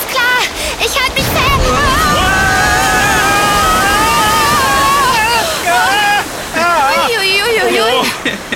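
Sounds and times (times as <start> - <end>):
rushing water of river rapids: 0.0 - 8.5
several voices shouting and calling out: 0.8 - 8.0.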